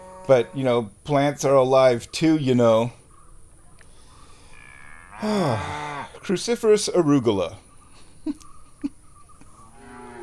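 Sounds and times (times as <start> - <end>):
cows mooing: 0.0 - 0.6, 4.5 - 6.2, 9.7 - 10.2
speech: 0.3 - 3.0, 5.2 - 7.6, 8.2 - 8.4.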